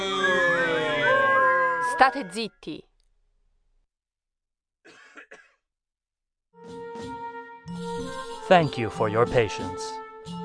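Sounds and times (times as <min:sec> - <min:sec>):
crowd whistling: 0:00.0 - 0:02.1
speech: 0:02.0 - 0:02.9, 0:08.5 - 0:10.0.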